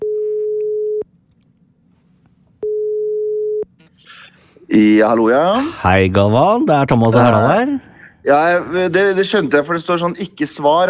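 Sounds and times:
faint hum: 0.0s - 10.8s
phone outgoing call ringing tone beeps: 2.6s - 3.7s
speech: 4.7s - 10.8s.

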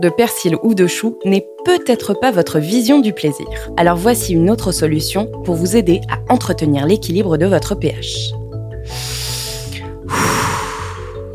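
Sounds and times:
speech: 0.0s - 9.2s
soft music: 0.0s - 11.3s
deep inhale through nose: 8.8s - 11.3s
strong breathy exhale through mouth: 8.8s - 11.3s.

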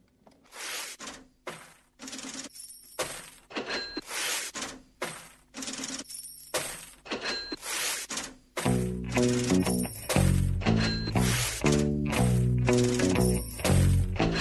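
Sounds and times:
change coins dropping and clinking: 2.0s - 4.0s, 5.2s - 7.4s, 9.2s - 10.2s, 12.7s - 14.3s
steady musical bed: 8.7s - 14.3s.

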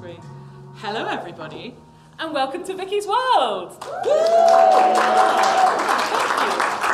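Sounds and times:
speech: 0.8s - 6.8s
audience applauding with dense clapping: 3.8s - 6.9s.

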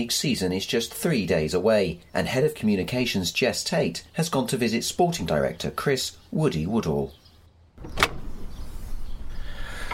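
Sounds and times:
speech: 0.0s - 7.2s
front door latch click: 7.8s - 8.6s.

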